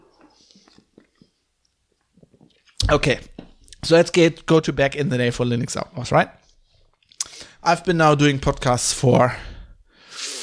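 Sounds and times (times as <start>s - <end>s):
beer sipping: 0.1s - 2.8s, 10.0s - 10.4s
wet gulps: 0.2s - 2.9s
speech: 2.9s - 6.4s, 7.7s - 9.5s.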